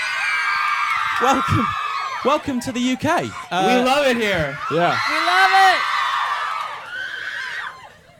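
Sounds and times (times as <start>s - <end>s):
crowd of fans in the UK screaming: 0.0s - 8.1s
speech: 1.2s - 5.9s.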